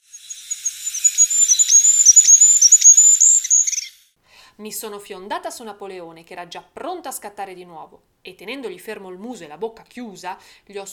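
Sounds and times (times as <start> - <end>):
goldcrest (Regulus regulus) faint high-pitched whistling song: 0.0 - 4.1
speech: 4.6 - 10.9.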